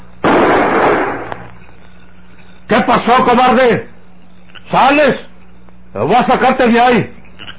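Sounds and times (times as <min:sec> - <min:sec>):
pistol shot during a gunfight: 0:00.2 - 0:01.6
speech: 0:02.7 - 0:03.9, 0:04.7 - 0:05.3, 0:06.0 - 0:07.2.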